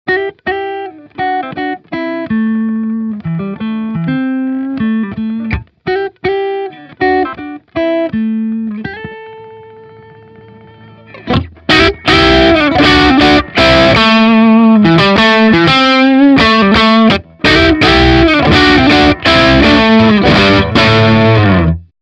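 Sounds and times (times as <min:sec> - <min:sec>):
guitar pick strum: 0:00.1 - 0:21.9.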